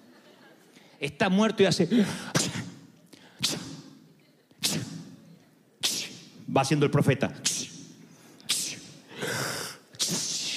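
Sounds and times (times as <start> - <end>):
speech: 1.0 - 2.4, 6.6 - 7.6
voice imitating sneezes: 1.8 - 5.2, 5.8 - 6.5, 7.4 - 10.5.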